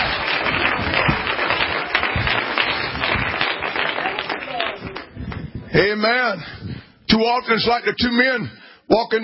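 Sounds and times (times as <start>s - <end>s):
audience clapping their hands to the Lord: 0.0s - 5.7s
speech: 5.8s - 9.2s.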